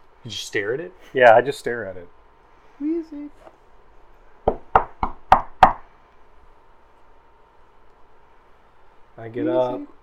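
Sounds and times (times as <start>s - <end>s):
speech: 0.2s - 2.2s, 2.8s - 3.6s, 9.2s - 10.0s
firm sharp knocks on a door: 4.4s - 5.8s.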